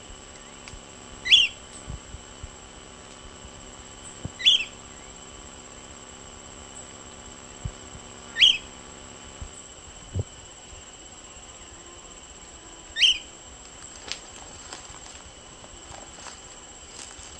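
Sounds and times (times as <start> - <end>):
high electronic-like hum: 0.0 - 17.3
Short-crested flycatcher Myiarchus ferox whistled calls: 0.3 - 1.8, 4.0 - 5.9, 8.2 - 8.8, 12.6 - 13.4.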